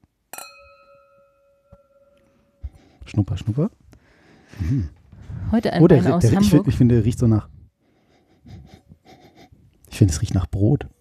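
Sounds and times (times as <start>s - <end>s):
wine glasses clinking in a toast: 0.3s - 2.7s
speech: 3.1s - 3.8s, 4.7s - 7.6s, 10.0s - 10.9s.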